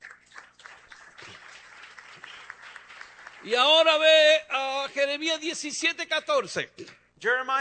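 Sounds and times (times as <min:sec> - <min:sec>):
congregation applauding: 0:00.0 - 0:04.4
speech: 0:03.4 - 0:07.5.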